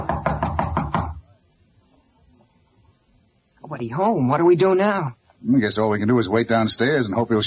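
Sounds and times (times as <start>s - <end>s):
knocking on a door of a room at the end of a hall: 0.0s - 1.2s
speech: 3.8s - 7.4s.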